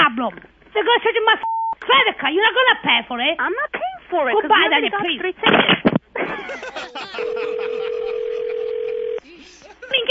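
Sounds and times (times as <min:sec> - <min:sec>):
speech: 0:00.2 - 0:08.0, 0:09.9 - 0:10.0
laughter: 0:06.2 - 0:10.0
telephone line tone connecting a three-way call: 0:07.2 - 0:09.2.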